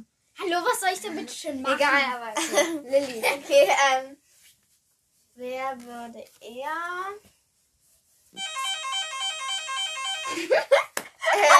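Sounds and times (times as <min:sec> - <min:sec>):
speech: 0:00.0 - 0:04.2, 0:05.4 - 0:07.3, 0:10.3 - 0:11.5
bright electronic ringing with pulsing warble: 0:08.4 - 0:10.6
laughter: 0:10.3 - 0:11.5.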